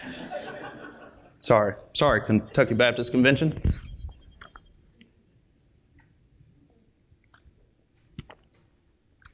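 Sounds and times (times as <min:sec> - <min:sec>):
laughter: 0:00.0 - 0:01.4, 0:02.2 - 0:03.2
speech: 0:00.0 - 0:03.9
wet mouth clicks: 0:03.6 - 0:06.1, 0:07.1 - 0:09.3
person sipping and swallowing water: 0:04.4 - 0:05.8, 0:06.6 - 0:09.3.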